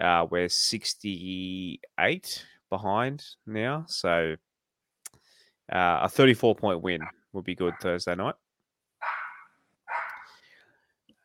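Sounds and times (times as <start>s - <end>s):
speech: 0.0s - 4.5s, 5.7s - 8.4s
dog barking: 9.0s - 10.3s.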